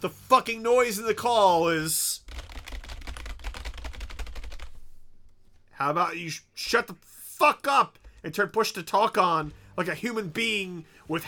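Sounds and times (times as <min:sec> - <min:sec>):
speech: 0:00.0 - 0:02.3, 0:05.8 - 0:11.2
mechanical keyboard typing: 0:02.3 - 0:04.7.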